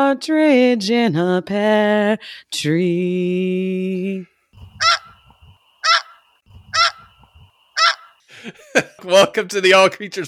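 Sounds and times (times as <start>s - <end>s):
speech: 0.0s - 5.0s, 8.4s - 10.2s
geese honking: 4.6s - 8.2s
laughter: 8.3s - 9.4s.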